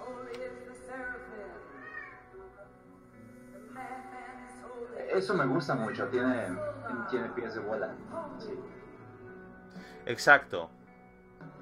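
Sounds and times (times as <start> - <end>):
house cat meowing: 1.6 - 2.5
speech: 5.2 - 8.8, 10.0 - 10.7.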